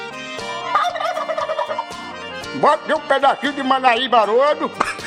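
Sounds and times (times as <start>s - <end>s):
turkeys gobbling while being fed: 0.7s - 2.0s
speech: 2.5s - 4.9s.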